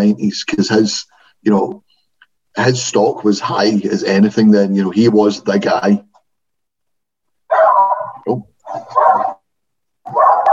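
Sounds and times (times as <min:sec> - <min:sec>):
speech: 0:00.0 - 0:01.9, 0:02.6 - 0:06.1, 0:08.3 - 0:09.3
dog barking: 0:07.5 - 0:09.4, 0:10.0 - 0:10.5.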